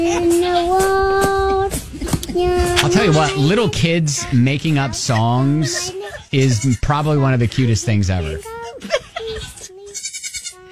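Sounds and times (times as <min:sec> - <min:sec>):
laughter: 0:00.0 - 0:00.6, 0:01.5 - 0:10.0
speech: 0:02.4 - 0:09.0
goats bleating: 0:02.5 - 0:07.2, 0:08.2 - 0:10.7.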